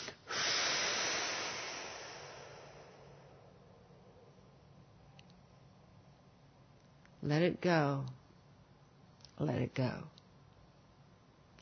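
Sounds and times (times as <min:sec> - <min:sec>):
person breathing in deeply: 0:00.0 - 0:03.5
speech: 0:07.2 - 0:08.2, 0:09.4 - 0:10.2.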